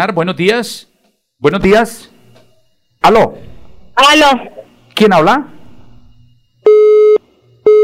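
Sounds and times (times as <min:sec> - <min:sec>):
speech: 0:00.0 - 0:02.1, 0:03.0 - 0:05.6
telephone busy tone after dropped call: 0:06.6 - 0:07.8.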